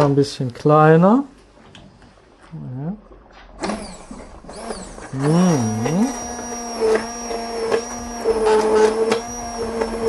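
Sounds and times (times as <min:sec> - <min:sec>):
speech: 0:00.0 - 0:01.3, 0:05.2 - 0:06.2
small immersion blender whirring: 0:03.6 - 0:10.0.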